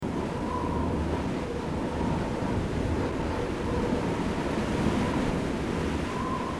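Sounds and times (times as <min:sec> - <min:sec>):
winter wind: 0:00.0 - 0:06.5.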